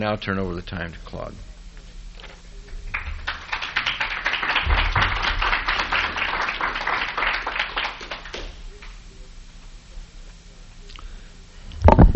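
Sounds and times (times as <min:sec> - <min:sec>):
speech: 0:00.0 - 0:01.5
audience applause: 0:02.6 - 0:08.9.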